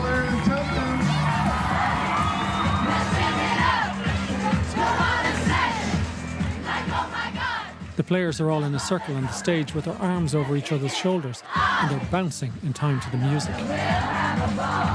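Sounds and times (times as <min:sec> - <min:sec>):
large crowd cheering as camogie players enter: 0:00.0 - 0:14.9
scattered whoops: 0:00.8 - 0:03.4
speech: 0:08.0 - 0:14.9.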